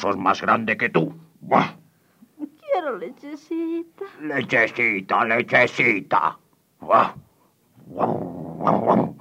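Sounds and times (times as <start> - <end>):
speech: 0.0 - 1.8, 2.8 - 7.2, 7.9 - 9.0
dog growling: 7.8 - 9.1.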